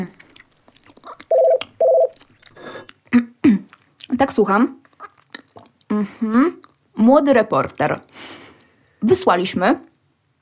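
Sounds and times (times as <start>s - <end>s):
landline telephone ringing with electronic bursts: 1.3s - 2.1s
speech: 4.2s - 4.8s, 6.1s - 8.1s, 9.0s - 9.9s.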